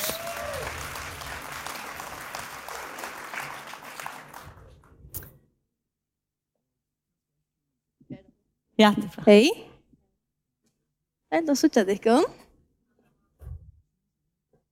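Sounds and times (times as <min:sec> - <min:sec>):
audience applause: 0:00.0 - 0:04.9
speech: 0:08.8 - 0:09.7, 0:11.4 - 0:12.4.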